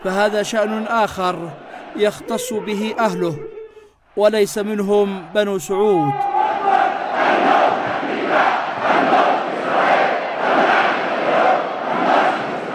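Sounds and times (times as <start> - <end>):
speech: 0.0 - 3.6, 4.2 - 6.3
large rally crowd chanting in unison in a public square: 0.0 - 12.7.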